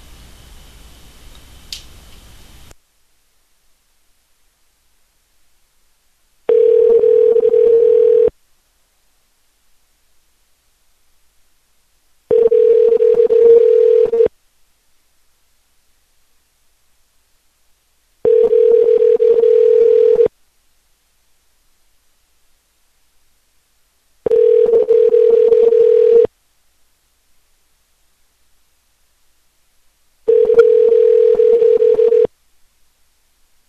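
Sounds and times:
telephone ringing back after redialing: 6.5 - 8.3, 12.3 - 14.3, 18.3 - 20.3, 24.3 - 26.3, 30.3 - 32.3.

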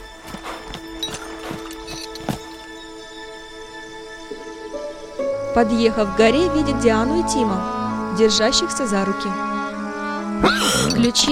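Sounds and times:
horse hooves walking along a forest path: 0.0 - 3.2
quiet steady tonal background: 0.0 - 11.2
speech: 5.6 - 9.6, 10.4 - 11.2.

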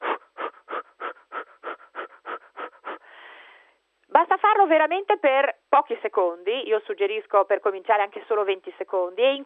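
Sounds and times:
person panting through the mouth with short fast shallow breaths: 0.0 - 3.8
speech: 4.2 - 9.4.

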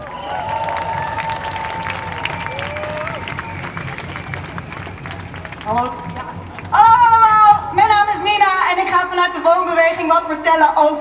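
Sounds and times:
audience applauding at a live event welcoming a speaker onstage: 0.0 - 7.5
audience cheering: 0.0 - 7.6
audience member whistling: 2.1 - 4.3
speech: 5.7 - 6.8, 8.2 - 10.9.

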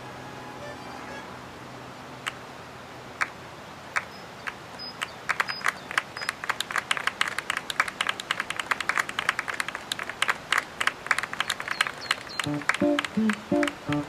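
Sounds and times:
audience applause: 5.0 - 14.0
short tonal musical notes: 12.5 - 14.0.

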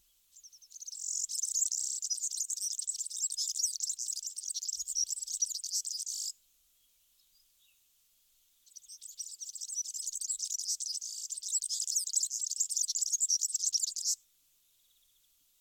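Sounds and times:
European serin rattling and jingling song: 0.4 - 6.3, 8.7 - 14.2.

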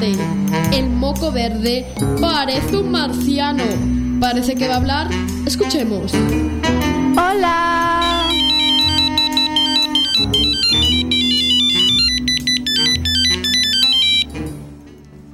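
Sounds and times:
speech: 0.0 - 7.7
telephone ringtone electronic melody: 7.9 - 14.3.

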